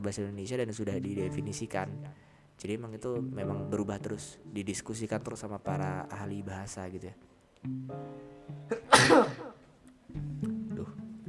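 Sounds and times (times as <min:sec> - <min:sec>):
speech: 0:00.0 - 0:11.0
person sneezing: 0:08.7 - 0:09.6.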